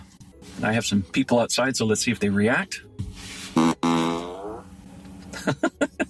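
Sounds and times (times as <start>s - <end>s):
speech: 0.6s - 3.0s
fart sound effect from a car's external speaker: 3.6s - 4.6s.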